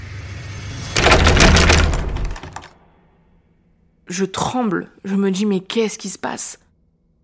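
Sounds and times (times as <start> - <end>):
door handle rattled hard and fast by a man outside the door: 1.0 - 2.7
speech: 4.1 - 6.6.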